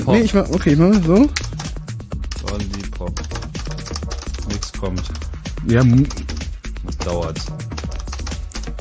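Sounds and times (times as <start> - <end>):
speech: 0.0 - 1.5, 4.8 - 6.3, 7.0 - 7.7
typing on a computer keyboard: 1.3 - 5.3, 6.0 - 8.8.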